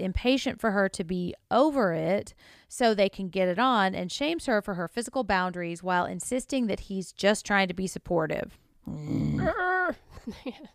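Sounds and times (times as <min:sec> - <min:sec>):
speech: 0:00.0 - 0:10.7
person growling low and rough: 0:08.9 - 0:10.0
quieter vocal grunts: 0:08.9 - 0:10.0.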